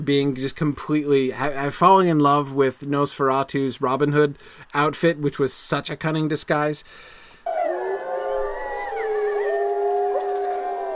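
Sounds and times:
speech: 0.0s - 7.2s
several wolves howling in chorus: 7.5s - 10.9s.

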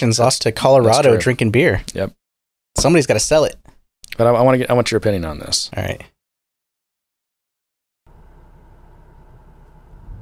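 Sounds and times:
speech: 0.0s - 2.2s, 2.8s - 6.2s
car interior engine and road drone with broadband hiss: 8.2s - 10.2s.

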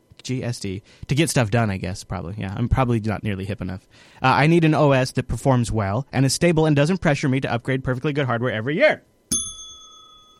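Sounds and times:
speech: 0.3s - 9.1s
bicycle bell ringing: 9.3s - 10.3s.

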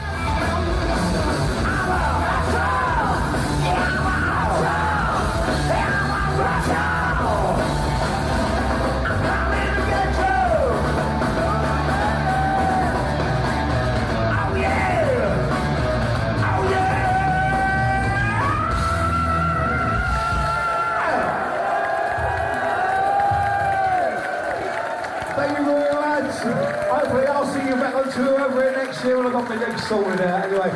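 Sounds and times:
loud dense live band at the O2 Arena: 0.0s - 21.3s
rock singer screaming high sustained notes at the O2 Arena: 0.0s - 24.2s
crowd noise at the O2 Arena: 0.0s - 30.7s.

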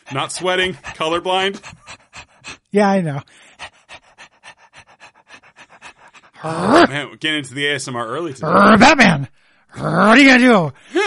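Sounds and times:
person imitating a dog panting: 0.0s - 7.0s
speech: 0.1s - 1.8s, 2.7s - 3.5s, 6.4s - 10.9s.

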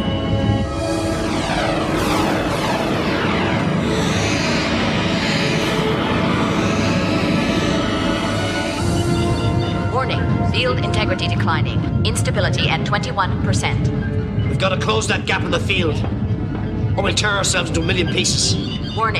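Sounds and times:
spaceship thrusters engaging with roaring drone and whining tones: 0.5s - 10.1s
speech: 10.6s - 16.2s, 17.0s - 19.1s.

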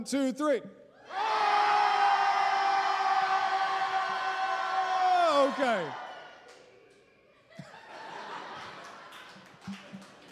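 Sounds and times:
speech: 0.0s - 1.4s, 5.4s - 6.0s
large crowd yelling together: 1.0s - 7.2s
laughter: 7.3s - 10.3s.

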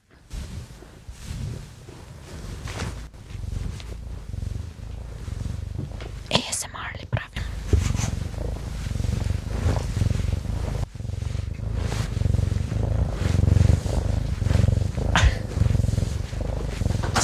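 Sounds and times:
black male cat purring loudly: 0.0s - 17.2s
soft rustling: 0.0s - 17.2s
faint breathy noises: 0.3s - 17.2s.

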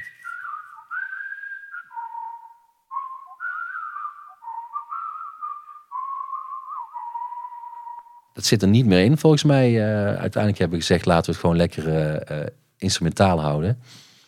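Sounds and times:
person whistling a bright bouncy melody: 0.0s - 8.3s
speech: 8.4s - 14.0s.

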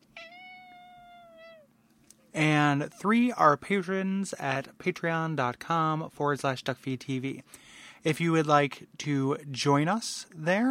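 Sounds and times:
cat meowing: 0.0s - 1.7s
low hum: 0.0s - 10.6s
speech: 2.3s - 10.6s.

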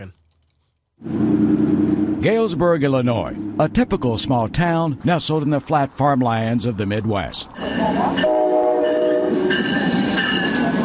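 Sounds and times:
speech: 0.0s - 0.2s, 1.0s - 8.4s
Amtrak passenger train rumbling past: 1.0s - 10.8s
Amtrak passenger train horn blast: 7.6s - 9.7s
train wheels squealing: 8.9s - 10.8s.

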